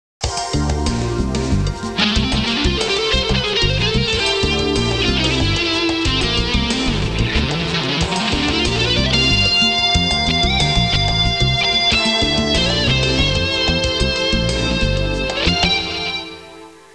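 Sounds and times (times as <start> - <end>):
urban music: 0.2 - 16.9.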